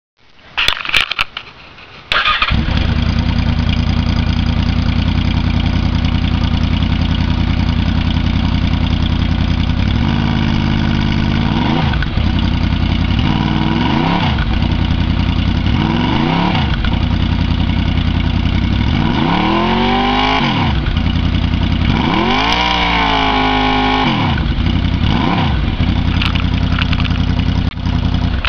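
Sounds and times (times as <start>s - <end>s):
baffled motorcycle exhaust: 2.0s - 28.4s.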